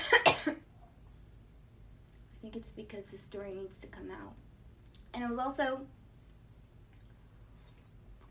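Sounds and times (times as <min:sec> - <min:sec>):
harsh coughs from a nearby person: 0:00.0 - 0:00.6
speech: 0:02.4 - 0:04.5, 0:05.1 - 0:06.0.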